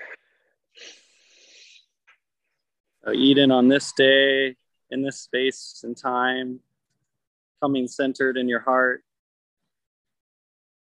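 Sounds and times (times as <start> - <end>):
deep breath drawn close to the microphone: 0.0 - 2.0
speech: 3.1 - 6.7, 7.6 - 9.1.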